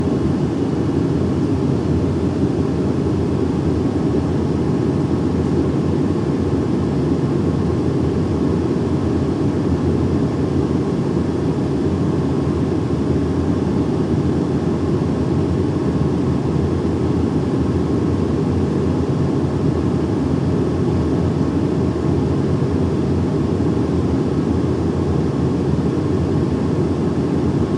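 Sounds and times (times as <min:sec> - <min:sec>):
airplane ride: 0:00.0 - 0:27.7.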